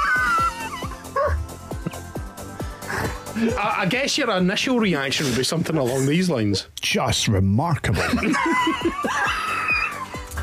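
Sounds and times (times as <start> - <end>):
dog yipping: 0.0 - 1.4
laughter: 3.3 - 4.0, 7.9 - 10.3
speech: 3.4 - 9.6.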